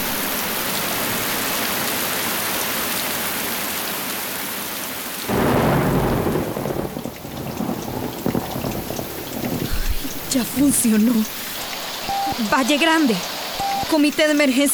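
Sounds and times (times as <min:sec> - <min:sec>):
steady heavy rain: 0:00.0 - 0:14.7
deep rumble of thunder: 0:05.3 - 0:13.2
speech: 0:10.4 - 0:11.4, 0:12.4 - 0:14.7.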